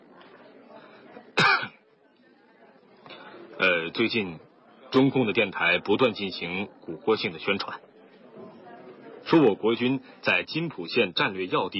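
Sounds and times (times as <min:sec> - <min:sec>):
quiet murmuring background: 0:00.0 - 0:11.7
single short sharp embarrassed cough: 0:01.4 - 0:01.8
speech: 0:03.6 - 0:07.9, 0:09.3 - 0:11.7.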